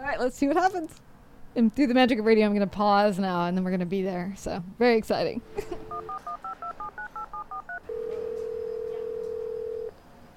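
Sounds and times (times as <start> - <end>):
speech: 0.2 - 6.3
telephone touch-tone dialing beeps: 5.8 - 9.9.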